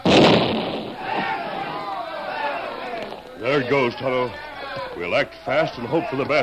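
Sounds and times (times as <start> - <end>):
stick of dynamite exploding: 0.0 - 3.8
crowd of voices shouting: 0.0 - 6.4
speech: 3.6 - 6.4.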